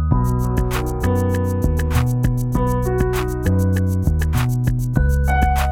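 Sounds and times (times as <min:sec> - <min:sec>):
thoughtful reversed beat: 0:00.1 - 0:05.7.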